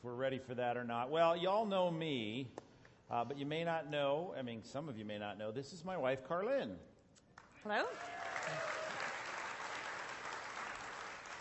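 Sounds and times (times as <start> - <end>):
speech: 0.0 - 6.9, 7.6 - 8.7
audience applause from a small crowd: 7.8 - 11.4.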